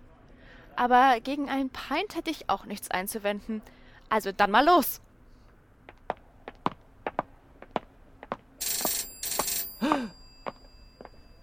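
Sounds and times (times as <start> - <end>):
speech: 0.8 - 5.1
telephone ringing in a phone booth: 8.6 - 11.4.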